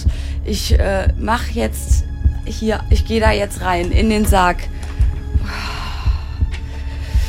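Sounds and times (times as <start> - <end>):
deep heartbeat thumping: 0.0 - 7.2
speech: 0.4 - 4.8.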